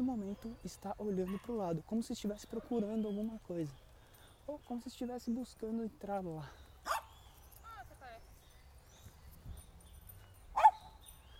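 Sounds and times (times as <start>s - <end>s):
speech: 0.1s - 3.8s, 4.5s - 7.0s
small dog yipping: 10.5s - 11.0s.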